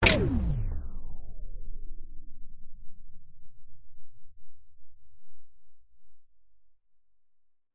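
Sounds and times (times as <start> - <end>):
science fiction machine sudden switch off power down: 0.0 - 1.0.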